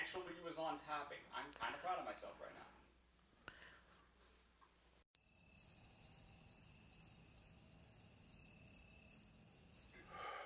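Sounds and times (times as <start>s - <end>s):
speech: 0.2s - 2.8s
cricket chirping: 5.2s - 10.3s.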